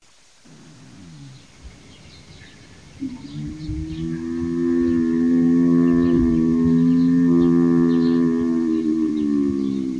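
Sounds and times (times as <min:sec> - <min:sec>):
bird calling: 0:02.2 - 0:09.9.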